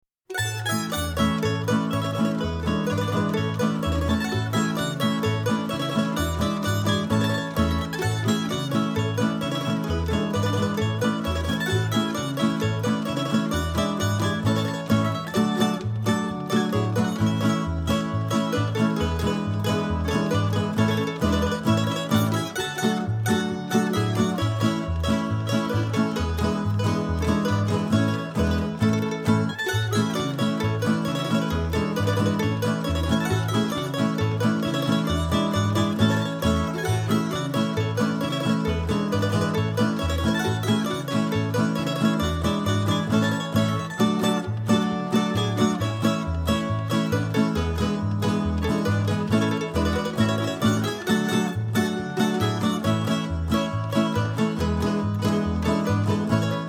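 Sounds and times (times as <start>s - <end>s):
Croatian wedding polka music: 0.2s - 56.6s.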